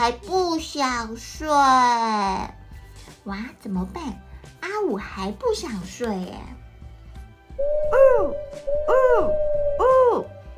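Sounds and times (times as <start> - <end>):
speech: 0.0 - 2.6, 3.2 - 6.6, 7.6 - 10.4
owl hooting in a tree: 7.6 - 10.4.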